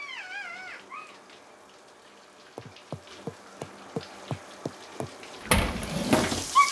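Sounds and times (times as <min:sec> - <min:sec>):
footsteps: 0:02.6 - 0:06.5.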